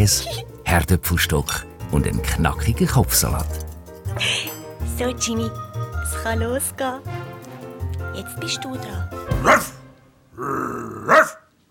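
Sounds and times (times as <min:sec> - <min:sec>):
speech: 0:00.0 - 0:04.3, 0:05.0 - 0:07.3, 0:08.2 - 0:09.7, 0:10.4 - 0:11.6
dog barking loudly: 0:09.4 - 0:09.8, 0:11.1 - 0:11.5
dog growling: 0:10.3 - 0:11.6.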